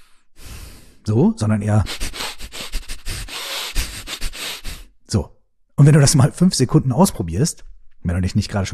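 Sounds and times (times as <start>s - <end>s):
rapid chaotic breathing in and out through the nose in a breathing exercise: 0.0s - 1.0s, 1.8s - 5.0s
speech: 1.0s - 2.0s, 5.1s - 8.7s.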